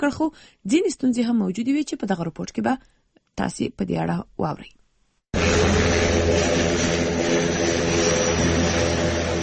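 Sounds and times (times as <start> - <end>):
speech: 0.0 - 4.8, 5.4 - 7.8
small passenger plane engine roar flying overhead: 5.4 - 9.4.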